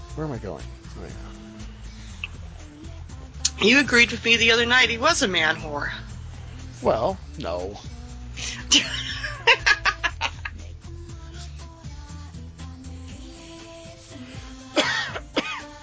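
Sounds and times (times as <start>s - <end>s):
speech: 0.2s - 1.5s, 3.6s - 6.1s, 6.8s - 9.6s
laughter: 8.4s - 10.7s
person clearing throat: 14.8s - 15.7s
person coughing: 14.8s - 15.7s.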